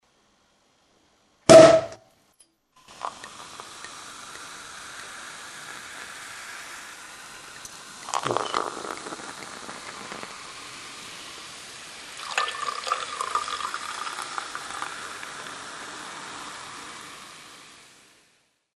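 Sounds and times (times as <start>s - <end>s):
champagne: 2.9s - 16.7s.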